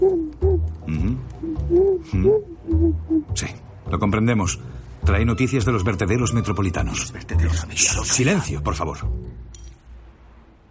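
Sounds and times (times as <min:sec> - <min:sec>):
black owl hooting: 0:00.0 - 0:00.8, 0:01.4 - 0:03.4
speech: 0:03.4 - 0:09.2.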